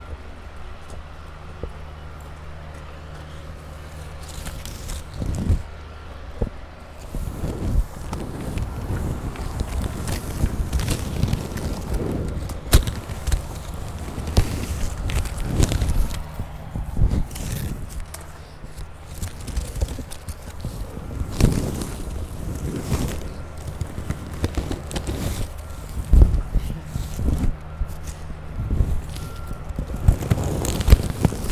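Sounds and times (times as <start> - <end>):
crunchy gravel ground on a university campus: 0.0 - 31.5.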